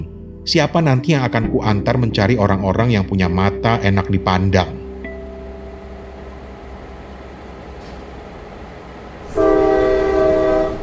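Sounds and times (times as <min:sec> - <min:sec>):
speech: 0:00.0 - 0:04.8
low rumble of rail noise: 0:03.2 - 0:10.8
loud sustained locomotive whistle as train departs: 0:05.8 - 0:10.8.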